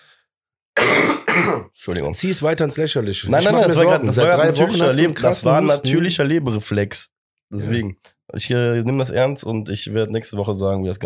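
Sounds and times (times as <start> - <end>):
harsh coughs: 0.8 - 1.7
speech: 1.6 - 11.0.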